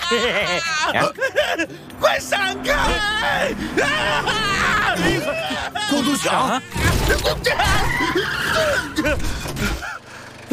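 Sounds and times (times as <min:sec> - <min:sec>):
laughter: 0:00.0 - 0:01.9, 0:02.6 - 0:10.5
car speeding through a forest: 0:00.0 - 0:10.5
car tires squealing while skidding through a forest: 0:00.0 - 0:10.5
overlapping wavering shouts: 0:02.0 - 0:09.0.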